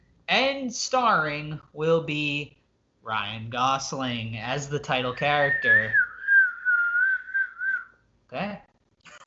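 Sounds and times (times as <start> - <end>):
speech: 0.3 - 6.0, 8.3 - 8.7
person whistling a long sustained note: 5.5 - 8.0.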